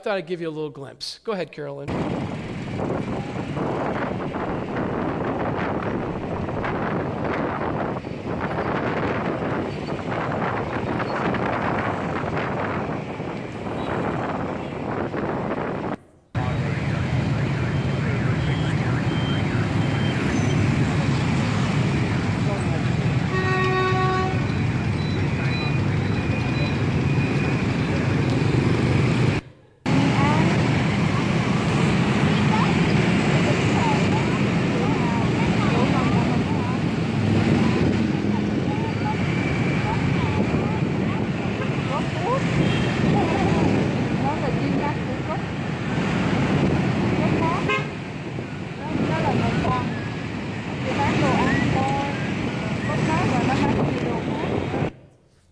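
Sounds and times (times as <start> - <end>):
speech: 0.0 - 4.8
gusty wind buffeting the microphone: 1.9 - 55.0
dense roar of city traffic with many small motorbike engines: 1.9 - 55.2
brief horn blare in city traffic: 23.2 - 24.6, 47.6 - 48.0.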